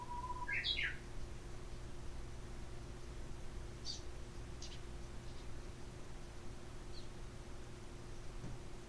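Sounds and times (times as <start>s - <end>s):
Japanese bush warbler song: 0.0s - 2.0s, 2.9s - 8.4s
low steady hum: 0.0s - 8.8s.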